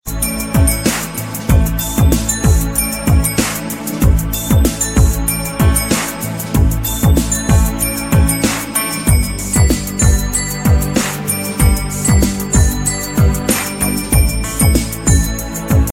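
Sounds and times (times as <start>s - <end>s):
bell bass ringtone: 0.1s - 15.9s.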